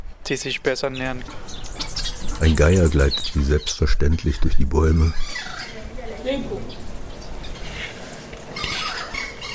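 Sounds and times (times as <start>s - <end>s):
steady noisy outdoor background: 0.0s - 9.5s
speech: 0.2s - 1.6s, 2.4s - 5.6s, 6.2s - 6.8s
Cuban crow giving odd nasal calls: 1.2s - 3.6s, 5.0s - 9.5s.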